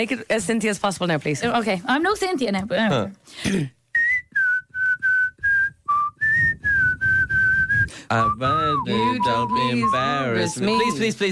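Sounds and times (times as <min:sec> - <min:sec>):
speech: 0:00.0 - 0:03.8, 0:08.1 - 0:11.3
person whistling a song tune: 0:04.0 - 0:11.0.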